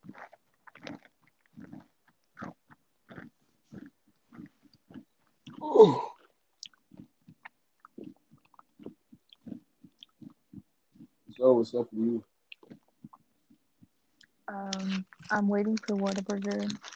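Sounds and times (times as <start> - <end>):
speech: 5.6 - 6.1, 11.5 - 12.3, 15.3 - 16.9
crunchy chips being eaten: 14.7 - 16.9.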